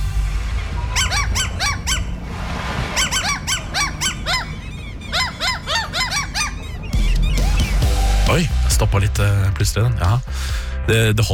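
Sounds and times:
tame gulls squawking a song's melody: 0.7s - 8.1s
speech: 8.4s - 11.3s.

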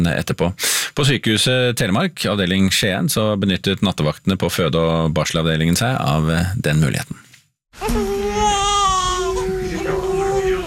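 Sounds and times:
speech: 0.0s - 7.2s, 7.8s - 8.1s
newborn baby crying in a maternity ward in Skien Norway: 7.8s - 10.6s.

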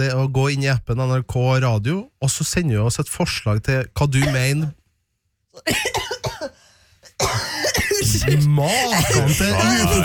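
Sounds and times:
speech: 0.0s - 4.8s, 5.6s - 6.4s, 8.2s - 10.0s
person coughing: 4.2s - 4.6s, 5.6s - 10.0s.

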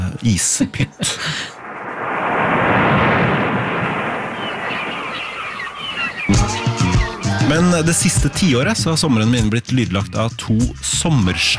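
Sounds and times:
speech: 0.2s - 1.6s, 7.5s - 11.5s
loud rushing wave surging and washing: 1.3s - 8.2s
seagull cries: 4.4s - 7.5s.

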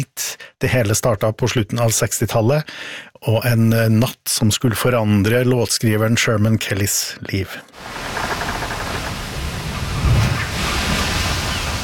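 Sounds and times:
speech: 0.0s - 8.4s
sea waves on open water in the Caribbean: 7.6s - 11.8s
wind noise: 7.7s - 11.8s.

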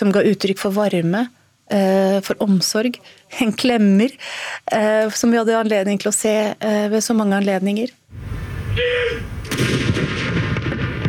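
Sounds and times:
speech: 0.0s - 10.3s
heavy cannon salute shots fired at a fortress: 8.1s - 11.0s.

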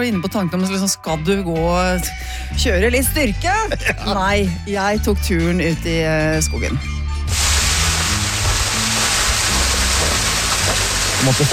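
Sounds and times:
speech: 0.0s - 7.0s, 11.2s - 11.5s
water running: 7.2s - 11.5s.

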